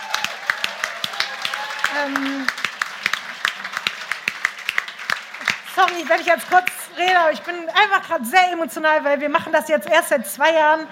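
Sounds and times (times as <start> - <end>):
voices calling out or cheering: 0.0 - 2.7
audience applauding: 0.0 - 8.1
speech: 2.0 - 2.6, 5.8 - 10.8.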